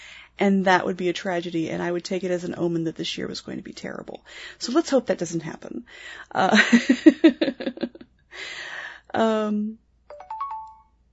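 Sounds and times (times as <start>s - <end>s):
speech: 0.4s - 7.8s, 8.4s - 9.8s
mobile phone electronic ringing tones: 10.1s - 11.0s.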